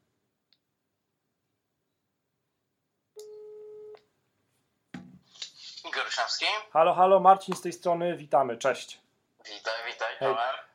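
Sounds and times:
telephone ringback tone on speakerphone: 3.2s - 4.0s
speech: 6.1s - 9.0s, 10.2s - 10.6s.

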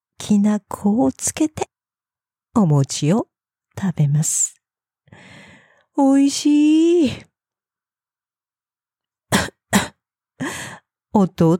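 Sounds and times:
speech: 0.3s - 1.7s, 2.6s - 5.4s, 6.0s - 7.3s, 10.4s - 11.5s
person coughing from choking: 9.3s - 10.0s.

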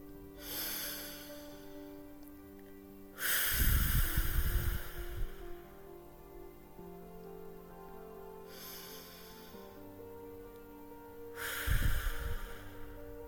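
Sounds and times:
slow deep breathing during a guided breathing exercise: 0.3s - 2.3s, 3.1s - 5.8s, 8.4s - 10.5s, 11.1s - 13.2s.

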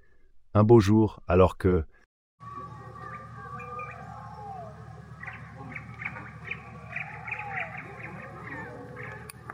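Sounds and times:
speech: 0.6s - 2.6s
birds chirping and twittering: 1.8s - 9.5s
steady low rumble of city traffic: 2.4s - 9.5s.

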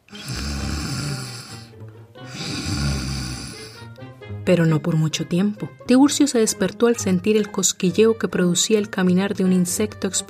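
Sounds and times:
men snoring deeply: 0.0s - 4.0s
speech: 4.5s - 10.2s.

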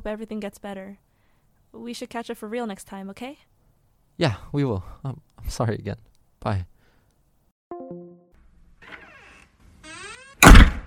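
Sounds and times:
speech: 0.0s - 1.1s, 1.7s - 3.5s, 4.2s - 6.7s
creaky door swinging open: 8.8s - 10.6s
door slamming shut: 10.0s - 10.8s.

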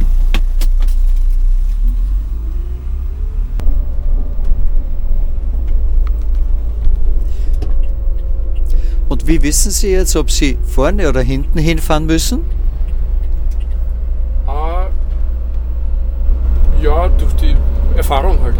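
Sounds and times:
catering vehicle engine rumble driving across an airport apron: 0.0s - 18.5s
faint catering vehicle whine: 3.0s - 18.5s
speech: 9.3s - 12.6s, 18.1s - 18.5s.

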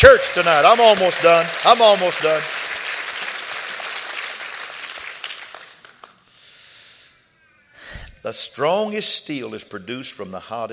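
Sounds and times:
speech: 0.0s - 2.6s, 8.2s - 10.7s
audience clapping: 0.0s - 6.3s.

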